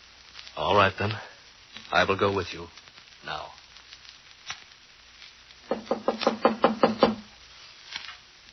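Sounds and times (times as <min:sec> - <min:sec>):
speech: 0:00.6 - 0:01.3, 0:01.9 - 0:03.5
knocking on a door: 0:05.7 - 0:07.3.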